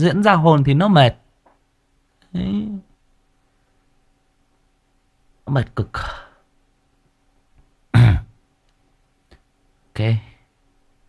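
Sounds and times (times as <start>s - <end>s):
speech: 0.0s - 1.2s, 2.3s - 2.9s, 5.5s - 6.2s, 10.0s - 10.3s
single short throaty cough: 7.9s - 8.4s.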